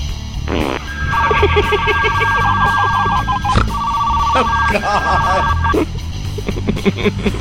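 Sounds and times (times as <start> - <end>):
novelty fart-phone warbling electronic telephone ring: 0.9 - 5.8
speech: 1.6 - 3.5, 4.4 - 7.3.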